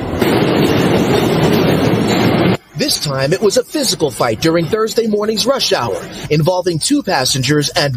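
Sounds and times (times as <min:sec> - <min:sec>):
rattling clatter of subway train: 0:00.0 - 0:03.1
subway A train rumbling along the rails approaching Chambers Street station in Manhattan: 0:00.0 - 0:06.4
speech: 0:02.9 - 0:07.9.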